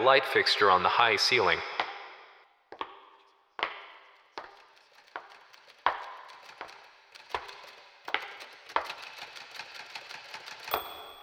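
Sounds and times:
speech: 0.0 - 1.8
typewriter keys clacking: 4.2 - 11.2
small bell-like typewriter ding: 6.2 - 11.2.

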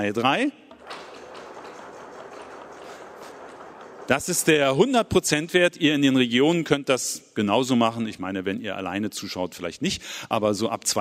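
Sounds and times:
speech: 0.0 - 1.0, 4.1 - 10.9
audience knocking on tables from underneath: 0.7 - 4.4.

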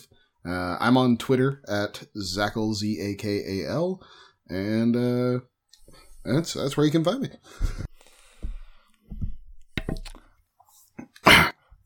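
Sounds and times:
speech: 0.0 - 7.9
harsh chesty coughing fit: 11.1 - 11.8.

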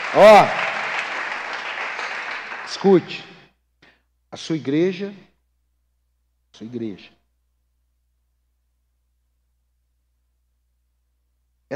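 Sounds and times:
audience applauding: 0.0 - 3.2
speech: 0.1 - 0.6, 2.7 - 3.3, 4.4 - 5.3, 6.6 - 7.2.

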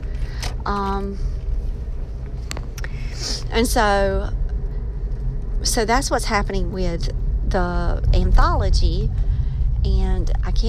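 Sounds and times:
steady low road rumble of heavy traffic: 0.0 - 10.6
speech: 0.7 - 1.3, 3.5 - 4.4, 5.6 - 9.2, 9.8 - 10.6.

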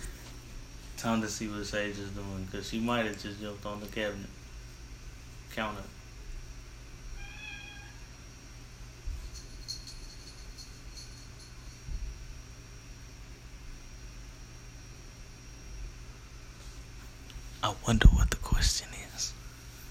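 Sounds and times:
speech: 1.0 - 4.4, 5.6 - 6.0, 17.8 - 19.4
cat meowing: 7.2 - 8.1.

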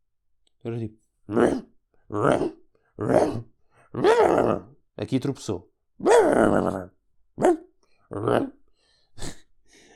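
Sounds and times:
speech: 0.6 - 7.5, 8.2 - 8.6
voice imitating a big fat Golden Retriever-style dog growling while walking: 1.3 - 4.8, 6.0 - 8.6.

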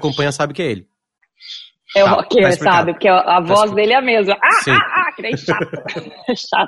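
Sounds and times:
speech: 0.0 - 6.6
pet bird chirping: 1.3 - 2.1
laughter: 4.7 - 6.6.

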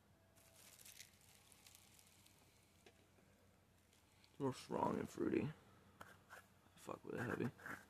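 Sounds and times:
cannabis being rolled in rolling paper: 0.4 - 2.7
speech: 4.4 - 5.6, 6.8 - 7.8.

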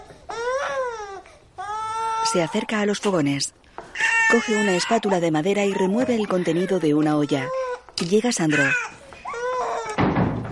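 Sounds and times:
baby crying: 0.0 - 2.7, 4.0 - 10.0
speech: 2.3 - 3.6, 4.3 - 9.0
dull thump and rumbling noise: 10.0 - 10.4.

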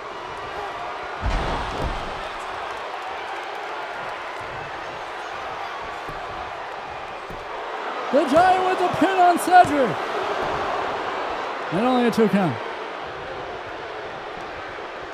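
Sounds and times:
crowd noise: 0.0 - 15.1
wrestler gorilla-press slammed onto the ring: 1.2 - 2.9
speech: 8.1 - 10.0, 11.7 - 12.6.

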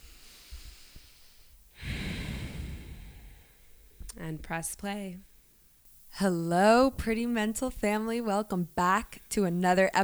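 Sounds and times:
deep breath drawn slowly: 0.0 - 4.1
speech: 4.2 - 5.3, 6.2 - 10.0.

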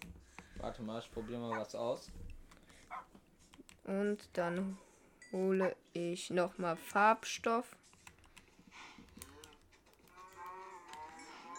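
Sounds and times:
speech: 0.6 - 2.2, 3.9 - 7.8
busy clicking: 2.5 - 4.6, 7.8 - 11.2
keyboard typing: 7.8 - 11.5
cows mooing in a video game on a farm: 10.1 - 11.5.

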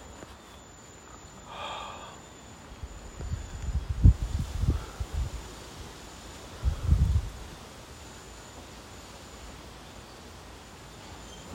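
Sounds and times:
gusty wind buffeting microphone outdoors on a balcony: 2.8 - 7.6.

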